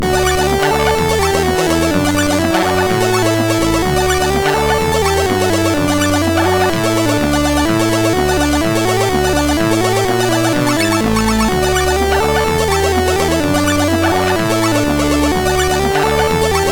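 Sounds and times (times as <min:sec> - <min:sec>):
chiptune tune: 0:00.0 - 0:16.6.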